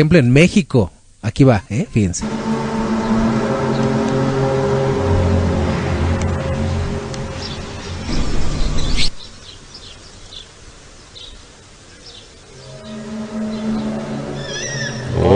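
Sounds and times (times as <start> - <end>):
speech: 0.0 - 2.4
eerie droning trumpet-like blasts from the sky in Ukraine: 2.2 - 9.4, 12.5 - 15.3.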